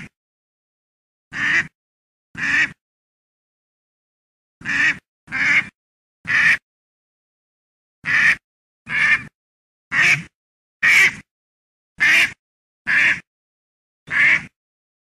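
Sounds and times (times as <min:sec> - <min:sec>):
duck giving harsh raspy quacks: 0:01.3 - 0:01.8, 0:02.4 - 0:02.8, 0:04.6 - 0:06.6, 0:08.0 - 0:11.3, 0:12.0 - 0:13.3, 0:14.1 - 0:14.6.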